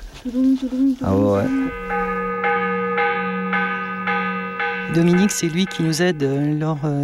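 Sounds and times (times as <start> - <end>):
speech: 0.2 - 2.3, 5.0 - 7.0
church bell rung as an alarm: 1.4 - 7.0.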